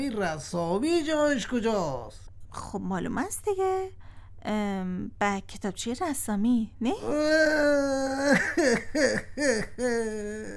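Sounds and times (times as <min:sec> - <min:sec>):
speech: 0:00.0 - 0:10.5
person wailing and sobbing: 0:07.0 - 0:10.5.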